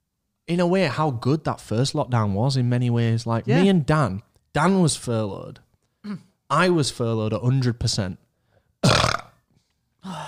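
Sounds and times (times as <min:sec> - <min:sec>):
speech: 0:00.5 - 0:08.2
loud burp: 0:08.8 - 0:09.5.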